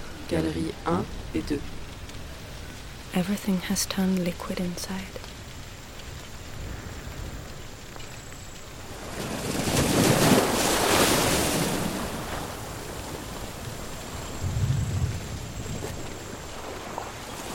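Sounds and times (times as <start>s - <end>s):
speech: 0.3s - 1.8s, 3.1s - 5.3s
ocean waves crashing in surf: 8.9s - 17.5s.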